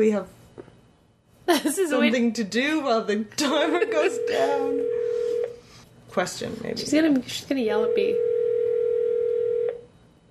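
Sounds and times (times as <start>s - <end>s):
speech: 0.0s - 0.4s, 1.5s - 5.3s, 6.1s - 8.3s
telephone ringback tone while placing a call: 4.0s - 5.6s, 7.8s - 9.8s.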